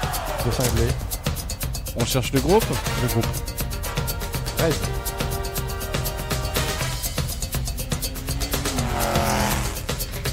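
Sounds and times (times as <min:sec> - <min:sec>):
electronic music track with steady pounding beat: 0:00.0 - 0:10.3
speech: 0:00.4 - 0:01.1, 0:02.0 - 0:03.5, 0:04.6 - 0:05.1
motorcycle engine revving: 0:06.2 - 0:10.3.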